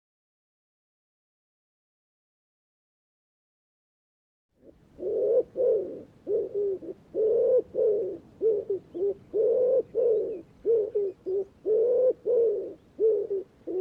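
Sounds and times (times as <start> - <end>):
bird cooing in low notes: 4.6 - 13.7.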